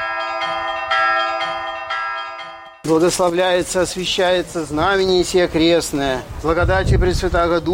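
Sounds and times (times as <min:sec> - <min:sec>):
five church bells ringing from a newly built belfry: 0:00.0 - 0:03.7
speech: 0:02.9 - 0:07.7.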